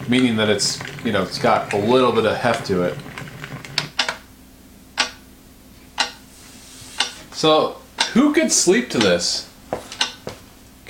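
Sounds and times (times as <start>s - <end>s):
speech: 0.1s - 3.1s, 7.4s - 9.5s
clock ticking: 5.0s - 5.2s, 6.0s - 6.2s, 7.0s - 9.4s, 10.0s - 10.3s.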